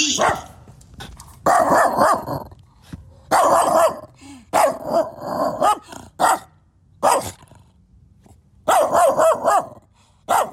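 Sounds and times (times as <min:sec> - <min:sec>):
dog barking loudly with a rough growling edge: 0:00.1 - 0:00.6, 0:01.4 - 0:02.5, 0:03.3 - 0:07.4, 0:08.7 - 0:10.5.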